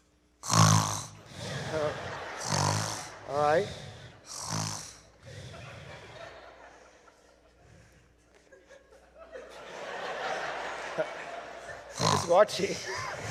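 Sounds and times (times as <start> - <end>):
boy imitating snoring with nasal snort and rattling breaths: 0.4 - 6.1, 11.9 - 12.5
chuckling: 1.2 - 4.2, 5.1 - 13.3
speech: 3.3 - 3.8, 12.3 - 13.1.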